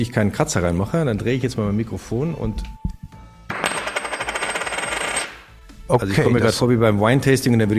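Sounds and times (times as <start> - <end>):
speech: 0.0 - 2.8, 5.9 - 7.7
gold coin dropped onto a table: 3.5 - 5.5.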